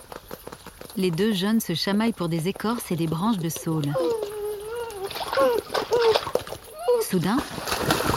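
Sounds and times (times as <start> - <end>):
speech: 1.0 - 4.2, 5.4 - 6.4, 7.1 - 7.9
European beaver slapping the water with its long flat tail: 3.6 - 8.1.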